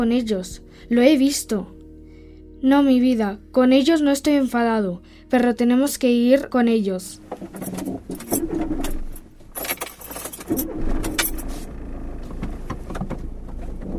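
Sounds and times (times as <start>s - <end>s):
speech: 0.0s - 1.8s, 2.6s - 8.9s
rattling clicks: 7.3s - 13.3s
car engine starting and running: 7.3s - 13.9s
keys jangling: 7.5s - 11.5s.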